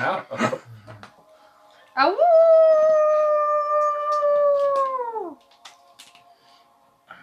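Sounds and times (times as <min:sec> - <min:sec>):
speech: 0:02.0 - 0:02.6
wolf-like howl: 0:02.1 - 0:05.4.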